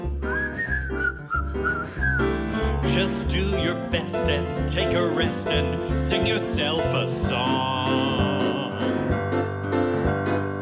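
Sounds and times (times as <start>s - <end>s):
bright clear whistled melody: 0.0s - 4.7s
bouncy musical accompaniment: 0.0s - 10.5s
speech: 1.6s - 2.3s, 2.9s - 8.4s.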